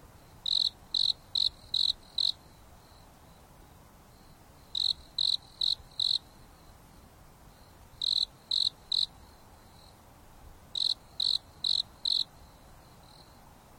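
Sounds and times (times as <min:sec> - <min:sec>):
gentle breeze on a mountain top: 0:00.0 - 0:13.7
soft hiss: 0:00.0 - 0:13.7
insect chirping at night on a mountain top: 0:00.1 - 0:03.5, 0:04.1 - 0:10.0, 0:10.7 - 0:13.4.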